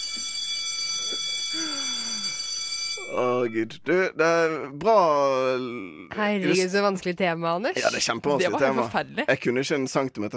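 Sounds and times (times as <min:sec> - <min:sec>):
electric school bell ringing: 0:00.0 - 0:03.5
speech: 0:03.1 - 0:10.3.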